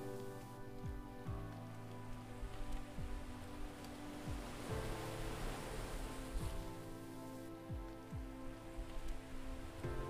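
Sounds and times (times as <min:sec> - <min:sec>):
calm sustained musical drone: 0:00.0 - 0:10.0
gentle waves lapping: 0:00.0 - 0:10.0.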